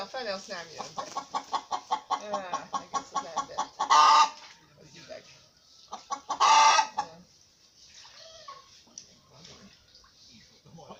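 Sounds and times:
speech: 0:00.0 - 0:01.6, 0:02.2 - 0:04.4
rooster clucking: 0:00.8 - 0:04.4, 0:05.9 - 0:07.2.

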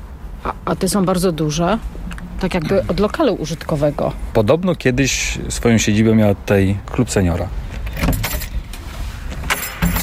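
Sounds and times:
speech: 0:00.4 - 0:08.1
keys jangling and clinking at a basement door lock: 0:08.0 - 0:08.6.

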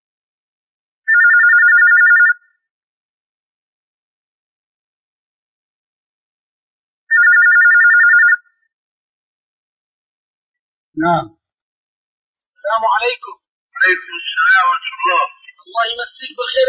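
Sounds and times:
telephone ringing for an incoming call-in question: 0:01.1 - 0:02.6, 0:07.1 - 0:08.6
speech: 0:11.0 - 0:11.4, 0:12.6 - 0:16.6.

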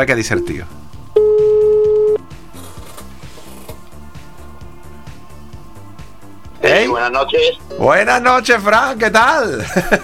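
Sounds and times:
speech: 0:00.0 - 0:00.8, 0:06.9 - 0:10.0
rhythmic music: 0:00.0 - 0:10.0
telephone dialing tone: 0:01.2 - 0:02.2.

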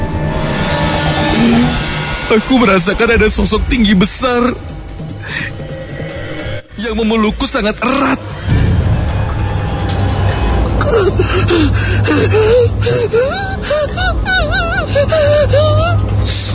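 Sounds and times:
steady low hum: 0:00.0 - 0:16.5
wailing moaning voice: 0:01.2 - 0:01.9, 0:10.8 - 0:16.5
speech: 0:02.3 - 0:05.6, 0:06.8 - 0:08.3, 0:10.9 - 0:16.5
gasping and panting for breath: 0:09.4 - 0:16.5.

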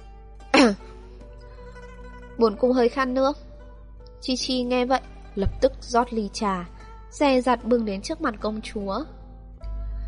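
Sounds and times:
woman coughing lightly: 0:00.6 - 0:00.8
speech: 0:02.4 - 0:03.5, 0:04.2 - 0:09.2.

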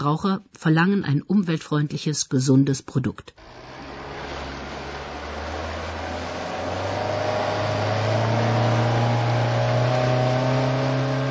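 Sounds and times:
speech: 0:00.0 - 0:03.8
motorboat engine droning: 0:03.4 - 0:11.3.

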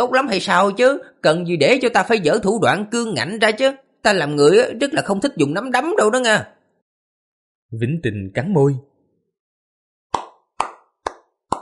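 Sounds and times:
speech: 0:00.0 - 0:06.6, 0:07.7 - 0:08.9
person clapping lightly in a hospital room: 0:10.1 - 0:11.6.

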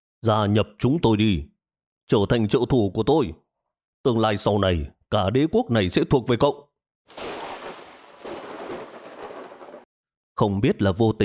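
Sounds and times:
speech: 0:00.2 - 0:01.5, 0:02.1 - 0:03.4, 0:04.0 - 0:07.3, 0:10.4 - 0:11.2
thunder rumbling across the sky: 0:07.1 - 0:09.9.

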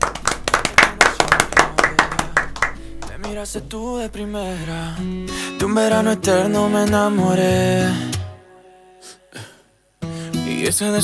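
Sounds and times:
people clapping for primary school students: 0:00.0 - 0:05.4
speech: 0:03.3 - 0:08.1, 0:10.6 - 0:11.0.

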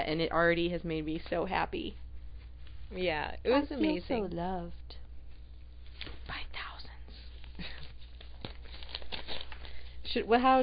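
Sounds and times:
speech: 0:00.0 - 0:02.0, 0:02.9 - 0:05.0, 0:10.1 - 0:10.6
large flat paper envelope crinkling and tearing open: 0:07.6 - 0:10.6.

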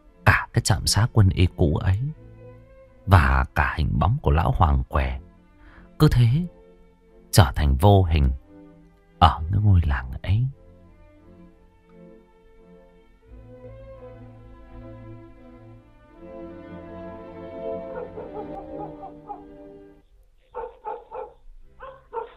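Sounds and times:
sustained tonal background: 0:00.0 - 0:22.3
speech: 0:00.6 - 0:02.2, 0:03.1 - 0:05.2, 0:06.0 - 0:06.6, 0:07.3 - 0:08.4, 0:09.2 - 0:10.6
dog barking at night by the porch of a village house: 0:17.6 - 0:19.6, 0:20.5 - 0:22.3.

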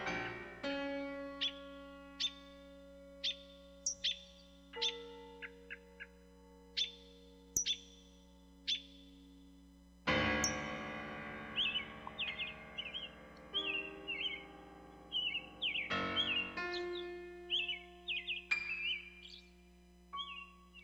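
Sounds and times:
chorus of twittering birds: 0:00.0 - 0:09.6, 0:10.2 - 0:20.8
steady low hum: 0:00.0 - 0:20.8
blackbird whistling: 0:02.2 - 0:02.5, 0:03.2 - 0:05.8, 0:11.6 - 0:14.5, 0:15.1 - 0:19.4.

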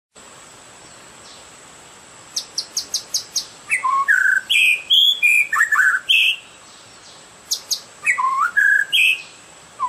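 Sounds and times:
Oriental magpie-robin singing: 0:02.3 - 0:09.8.

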